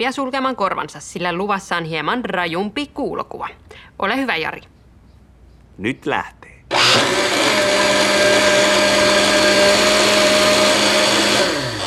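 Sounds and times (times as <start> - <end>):
speech: 0.0 - 4.7, 5.8 - 8.4
blender whirring while making a smoothie: 6.7 - 11.8.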